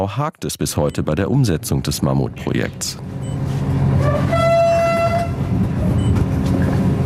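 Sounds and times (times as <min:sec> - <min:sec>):
speech: 0:00.0 - 0:04.0
three-carriage passenger express train rumbling after leaving Vilnius main station in Lithuania: 0:00.9 - 0:07.0
high whistle-like train horn tone: 0:04.0 - 0:05.5.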